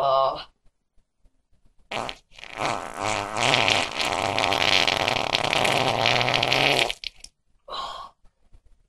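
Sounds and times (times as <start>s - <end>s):
long loud fart rumbling and sputtering: 1.9s - 7.3s.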